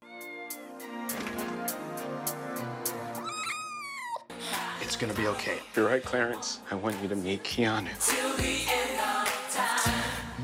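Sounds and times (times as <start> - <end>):
soft music: 0.0 - 10.4
kitten meowing: 3.2 - 4.3
speech: 4.9 - 8.8.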